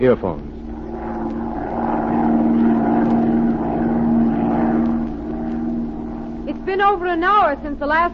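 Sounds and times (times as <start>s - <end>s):
speech: 0.0s - 0.5s, 6.6s - 8.1s
propeller plane engine droning in flight over a city: 0.0s - 8.1s.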